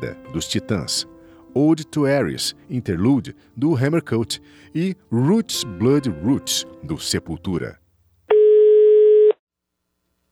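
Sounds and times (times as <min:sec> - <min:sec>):
speech: 0:00.0 - 0:07.8
telephone ringback tone before a call is answered: 0:08.3 - 0:09.3.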